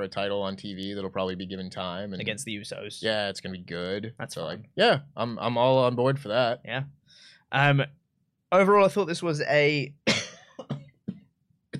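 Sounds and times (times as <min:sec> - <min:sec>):
speech: 0:00.0 - 0:10.2
person coughing: 0:10.1 - 0:11.7.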